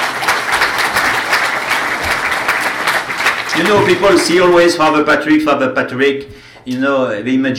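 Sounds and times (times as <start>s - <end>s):
audience applause: 0.0s - 4.8s
speech: 3.6s - 7.5s.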